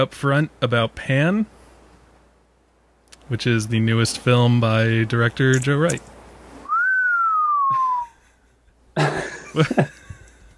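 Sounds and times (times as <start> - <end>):
speech: 0.0 - 1.6, 3.3 - 6.1, 9.6 - 10.0
person whistling one gliding note: 6.6 - 8.2
laughter: 7.7 - 10.5.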